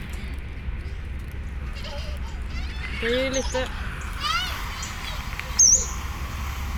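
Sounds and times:
people talking quietly: 0:00.0 - 0:06.3
speech: 0:03.0 - 0:03.9
recorded warbler song played back: 0:04.7 - 0:06.0.

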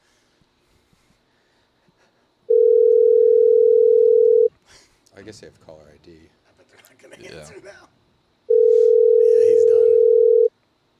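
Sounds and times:
telephone dial tone before calling someone back: 0:02.5 - 0:04.5, 0:08.5 - 0:10.5
speech: 0:05.3 - 0:08.0.

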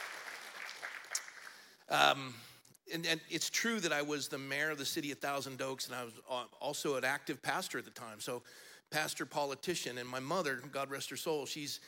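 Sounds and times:
crowd applauding: 0:00.0 - 0:01.8
speech: 0:01.9 - 0:11.8.

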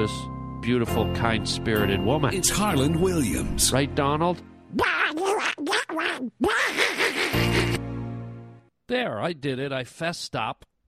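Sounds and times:
speech: 0:00.0 - 0:06.8, 0:08.9 - 0:10.7
toy duck quacking: 0:04.8 - 0:07.7.

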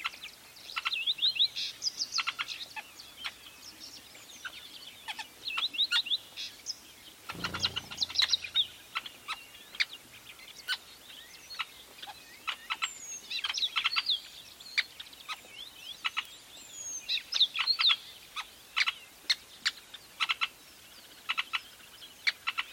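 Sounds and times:
weavers chirping and clicking at a large nest in Etosha National Park: 0:00.0 - 0:22.7.

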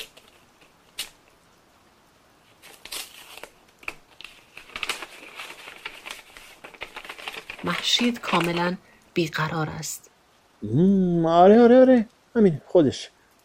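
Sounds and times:
paper letter crinkling as it is picked up and opened: 0:00.0 - 0:01.4, 0:02.4 - 0:08.9
speech: 0:07.6 - 0:13.2.

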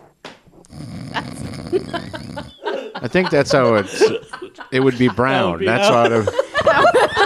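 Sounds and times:
voice imitating a snore: 0:00.7 - 0:02.6
speech: 0:01.7 - 0:02.2, 0:03.1 - 0:07.0
laughter: 0:01.7 - 0:07.2.

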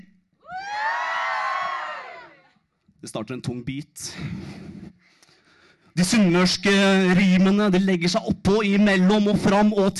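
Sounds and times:
concert audience cheering and whooping in a school gym hall: 0:00.4 - 0:02.6
speech: 0:03.0 - 0:04.6, 0:06.0 - 0:09.9.

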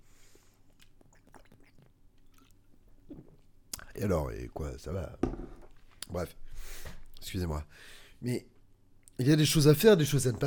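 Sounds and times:
wet mouth clicks while sipping Corona beer: 0:00.7 - 0:03.9
gulp of Corona beer: 0:00.8 - 0:03.9
speech: 0:04.0 - 0:08.5, 0:09.2 - 0:10.4.

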